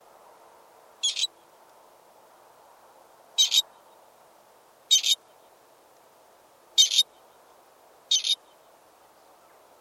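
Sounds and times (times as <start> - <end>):
partridge calling: 1.0 - 1.3, 3.4 - 3.7, 4.9 - 5.2, 6.8 - 7.1, 8.1 - 8.6.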